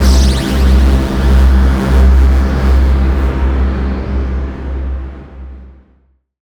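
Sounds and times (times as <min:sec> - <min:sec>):
tonal synth texture: 0:00.0 - 0:04.1.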